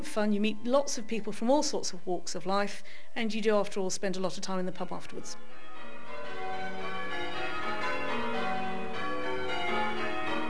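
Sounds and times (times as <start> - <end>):
speech: 0.1 - 5.6
church bells ringing in a tower: 4.8 - 10.4.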